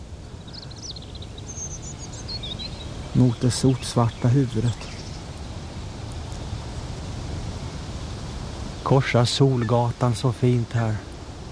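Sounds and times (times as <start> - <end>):
female bird calling to its mate with high chirping notes: 0.3 - 5.3
speech: 3.2 - 4.9, 8.9 - 11.1.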